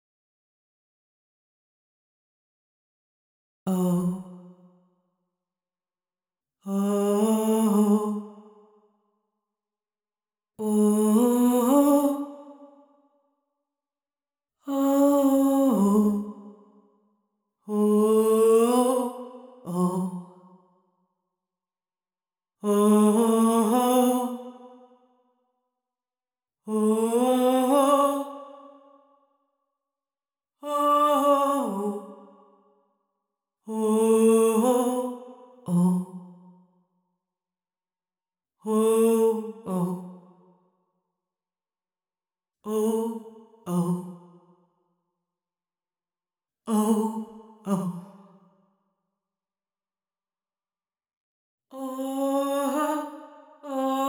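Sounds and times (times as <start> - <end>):
vocals with effects: 3.7 - 4.6, 6.7 - 8.6, 10.6 - 12.7, 14.7 - 16.6, 17.7 - 20.4, 22.6 - 24.8, 26.7 - 29.0, 30.6 - 32.4, 33.7 - 36.4, 38.7 - 40.3, 42.7 - 44.3, 46.7 - 48.3, 51.7 - 54.0.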